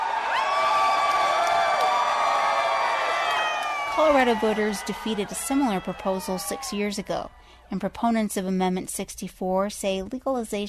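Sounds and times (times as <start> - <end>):
large crowd cheering and whooping at election results: 0.0 - 8.3
speech: 4.0 - 10.6.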